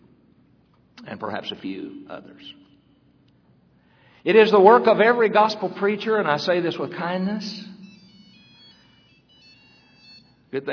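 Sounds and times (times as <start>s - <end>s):
low room hum: 0.0s - 10.7s
speech: 1.0s - 2.7s, 4.2s - 7.7s, 10.5s - 10.7s
faint electronic mobile phone ringtone: 7.4s - 10.7s.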